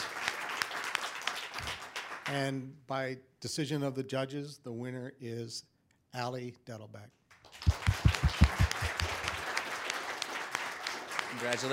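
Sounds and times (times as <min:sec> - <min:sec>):
audience applause: 0:00.0 - 0:02.3, 0:07.5 - 0:11.7
speech: 0:02.3 - 0:07.8, 0:11.4 - 0:11.7.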